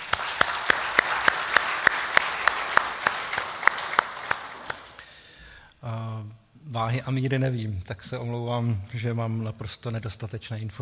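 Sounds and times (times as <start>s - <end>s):
audience applauding: 0.0s - 5.2s
speech: 6.7s - 10.7s.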